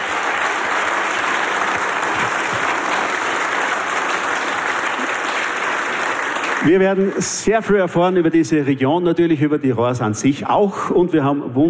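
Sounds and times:
audience applause: 0.0s - 7.5s
speech: 6.6s - 11.6s.

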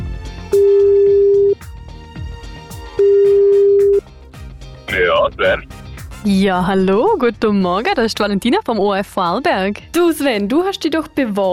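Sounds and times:
music: 0.0s - 11.5s
telephone ringback tones while a call is dialed: 0.6s - 1.6s, 3.0s - 4.0s
speech: 5.4s - 11.5s.

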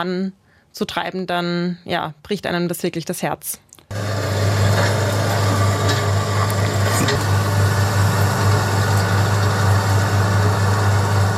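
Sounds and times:
speech: 0.0s - 3.7s
heavy diesel excavator engine idling: 3.9s - 11.3s
metal clank: 4.6s - 9.2s.

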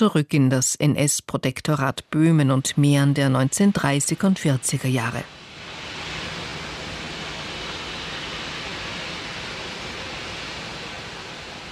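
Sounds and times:
speech: 0.0s - 5.4s
water rushing at a river dam: 5.3s - 11.7s.

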